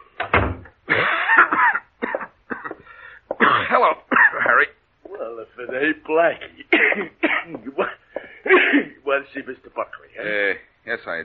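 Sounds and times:
person coughing harshly: 0.9 - 4.6, 6.7 - 9.0
speech: 5.6 - 7.9, 9.1 - 11.2.

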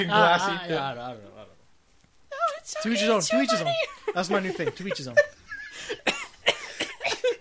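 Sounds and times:
speech: 0.0 - 1.6, 2.7 - 6.1
laughter: 2.9 - 7.3
person coughing: 5.9 - 7.3.

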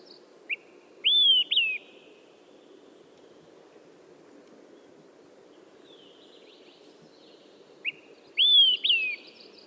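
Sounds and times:
Olive-sided Flycatcher singing whistled phrases: 0.0 - 2.1, 5.9 - 9.6.

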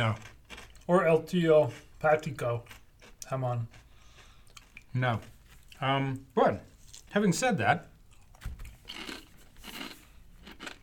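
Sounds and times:
speech: 0.0 - 0.3, 0.9 - 3.8, 5.0 - 7.9
crunching on a thick potato chip: 0.0 - 5.8, 8.1 - 10.8
chewing: 0.1 - 1.0, 2.6 - 5.8, 8.1 - 10.8.

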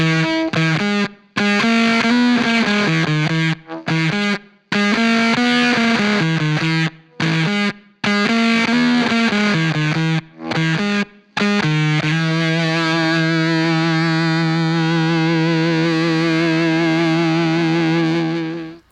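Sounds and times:
electric guitar through fuzz and overdrive pedals playing a Lydian riff: 0.0 - 18.9.

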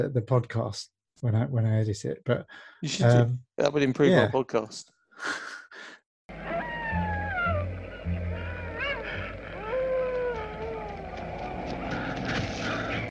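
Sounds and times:
speech: 0.0 - 5.9
stock sound effect of several wolves howling: 6.3 - 12.9.

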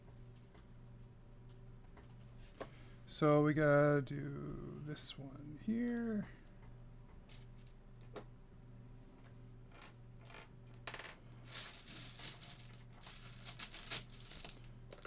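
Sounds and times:
low steady hum: 0.0 - 15.0
speech: 3.1 - 6.4
dice rattling across a hard tabletop: 7.3 - 8.3, 9.7 - 15.0.

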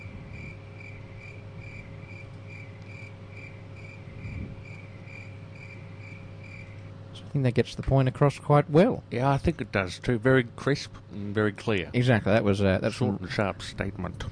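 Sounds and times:
crickets chirping: 0.0 - 7.1
low hum: 0.0 - 14.3
speech: 7.3 - 14.3.

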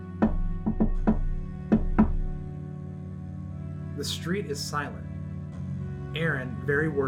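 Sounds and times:
knocking on a wooden door: 0.2 - 2.4
speech: 4.0 - 5.1, 6.2 - 7.0.

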